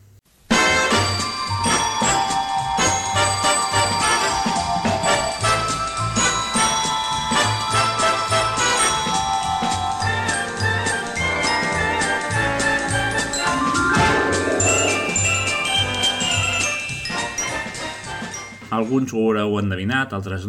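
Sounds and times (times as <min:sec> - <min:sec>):
bright bouncy 1960s American sitcom theme melody: 0:00.5 - 0:18.8
tinkling chime-like tones: 0:00.9 - 0:08.0, 0:11.2 - 0:18.8
speech: 0:19.0 - 0:20.4.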